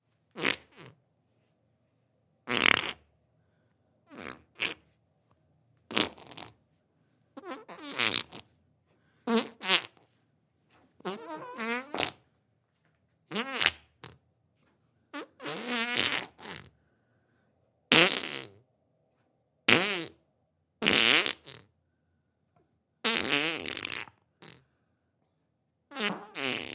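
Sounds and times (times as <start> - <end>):
human fart: 0.3 - 1.0, 2.5 - 3.1, 4.1 - 4.8, 5.9 - 6.6, 7.4 - 8.5, 9.3 - 10.0, 11.0 - 12.2, 13.3 - 14.2, 15.1 - 16.7, 17.9 - 18.6, 19.7 - 20.2, 20.8 - 21.7, 23.0 - 24.6, 25.9 - 26.7.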